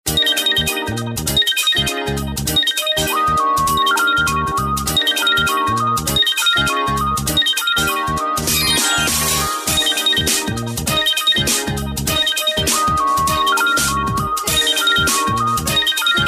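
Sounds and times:
Samsung SGH-A747 phone ringtone: 0.1 - 16.2.

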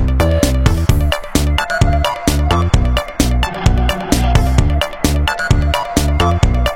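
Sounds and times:
ring modulated Nokia 7500 Prism ringtone: 0.2 - 6.7.

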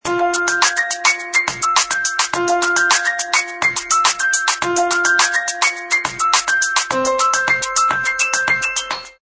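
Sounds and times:
HTC Freestyle ringtone: 0.0 - 9.2.

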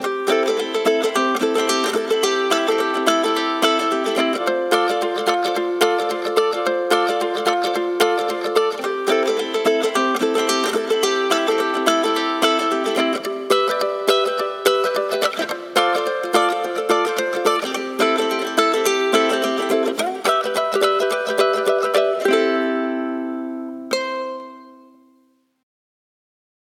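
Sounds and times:
ukulele ringtone on a phone: 0.0 - 25.4.

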